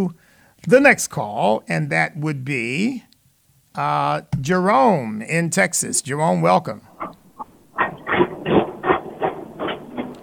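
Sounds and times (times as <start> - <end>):
speech: 0.0 - 3.1, 3.8 - 6.9
train rolling along the tracks with rhythmic clatter: 7.8 - 10.2.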